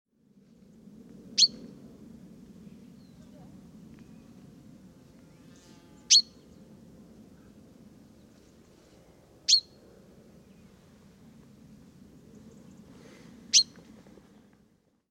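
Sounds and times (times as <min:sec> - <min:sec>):
steady low background hum: 0:00.2 - 0:15.0
common chaffinch Fringilla coelebs calls, short sharp high notes: 0:06.1 - 0:06.4, 0:09.5 - 0:09.7, 0:13.5 - 0:13.8.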